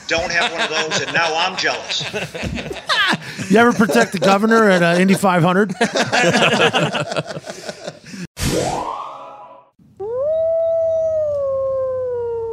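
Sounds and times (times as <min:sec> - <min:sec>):
laughter: 0:00.0 - 0:08.3
speech: 0:00.1 - 0:07.8
coyote howling: 0:10.0 - 0:12.5.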